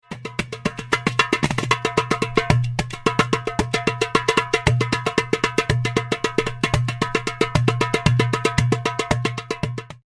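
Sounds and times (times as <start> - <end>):
membranophone drum: 0.0 - 10.0.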